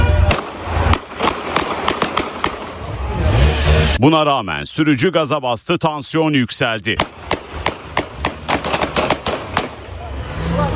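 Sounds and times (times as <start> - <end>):
police officer's warning gunshots fired into the air: 0.2 - 3.8, 6.9 - 10.0
speech: 4.0 - 7.3.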